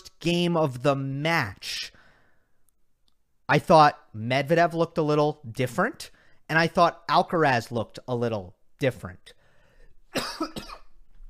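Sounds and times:
speech: 0.2s - 1.8s, 3.5s - 9.4s, 10.1s - 10.6s
harsh coughs: 10.1s - 11.0s.

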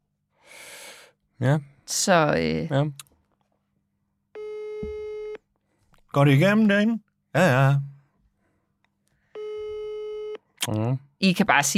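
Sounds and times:
speech: 1.4s - 3.1s, 6.1s - 7.9s, 10.6s - 11.7s
telephone ringing tone while dialing: 4.4s - 5.4s, 9.4s - 10.4s.

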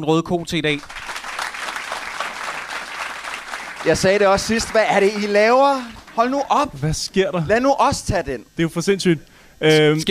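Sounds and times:
speech: 0.0s - 1.1s, 3.8s - 10.0s
audience applauding: 0.8s - 6.7s.

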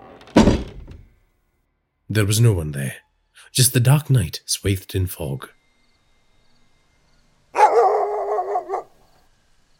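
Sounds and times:
wooden door flung open: 0.0s - 1.2s
speech: 2.1s - 5.6s
dog barking: 7.6s - 9.0s.

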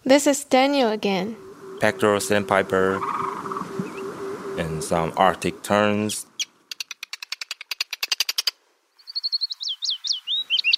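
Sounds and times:
speech: 0.1s - 3.3s, 4.6s - 6.3s
bird singing rattling clicks and whistled notes: 1.2s - 7.2s, 9.0s - 10.7s.

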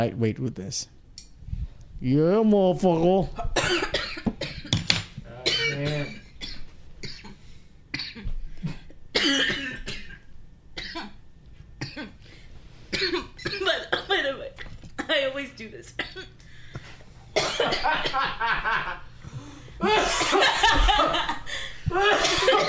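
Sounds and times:
speech: 0.0s - 1.0s, 2.0s - 4.1s
harsh coughing fits: 3.4s - 4.7s, 5.4s - 11.2s, 11.8s - 12.2s, 12.9s - 14.8s, 17.4s - 19.1s, 19.8s - 22.6s
person laughing: 17.8s - 19.1s, 19.8s - 22.6s.

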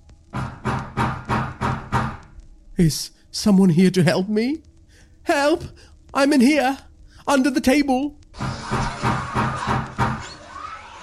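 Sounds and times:
heavy banging on a door: 0.3s - 2.3s, 8.4s - 10.3s
speech: 2.8s - 4.7s, 5.3s - 8.7s.

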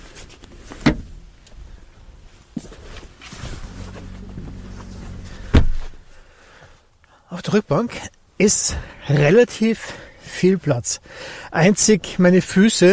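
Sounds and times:
car door shutting with a solid heavy thud: 3.6s - 6.0s
speech: 7.3s - 12.9s.

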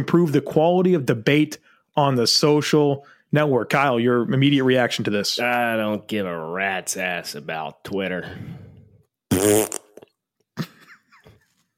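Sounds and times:
speech: 0.0s - 8.6s, 9.3s - 9.8s
wet raspberry blown with the lips imitating flatulence: 9.3s - 10.2s.

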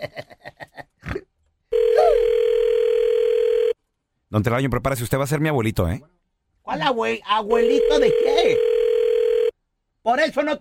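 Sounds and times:
speech: 0.0s - 0.3s, 4.3s - 6.1s, 6.7s - 8.7s, 10.1s - 10.5s
telephone dial tone when calling back: 1.7s - 3.8s, 7.7s - 9.5s.

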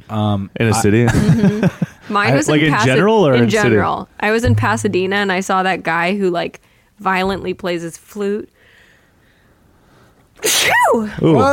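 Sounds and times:
speech: 0.1s - 8.5s, 10.4s - 11.5s
laughter: 1.0s - 3.8s
loud sneeze: 10.4s - 11.4s.

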